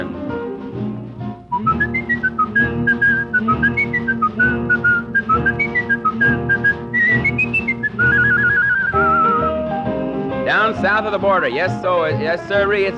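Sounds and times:
steady instrumental backing: 0.0 - 12.9
lively melodic whistling to call a Scottish terrier: 1.5 - 9.7
speech: 11.0 - 12.9.

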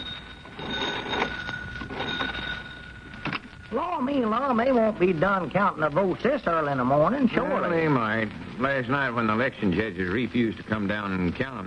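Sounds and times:
old telephone bell ringing in a country store: 0.0 - 4.2
speech: 3.7 - 11.6.

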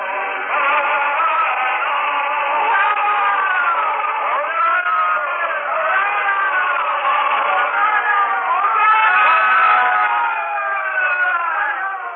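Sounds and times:
large crowd at city gates cheering and crying out: 0.0 - 12.1.

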